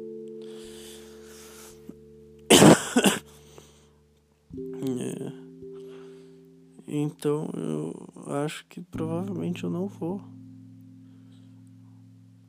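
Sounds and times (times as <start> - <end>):
person with an inflamed throat coughing harshly: 2.5 - 3.4
speech: 7.1 - 10.4.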